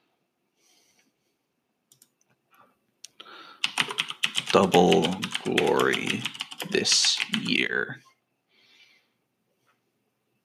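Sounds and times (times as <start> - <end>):
typing a note on a computer keyboard: 3.6 - 7.8
speech: 4.6 - 8.1.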